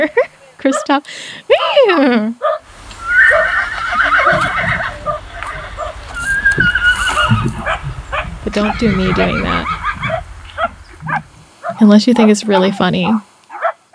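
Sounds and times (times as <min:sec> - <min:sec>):
laughter: 0:00.0 - 0:00.6, 0:02.9 - 0:11.4
speech: 0:00.0 - 0:02.6, 0:08.5 - 0:09.8, 0:11.8 - 0:13.3
steady outdoor noise: 0:00.0 - 0:13.9
horse neighing with shrill quavering whinny: 0:02.6 - 0:11.8.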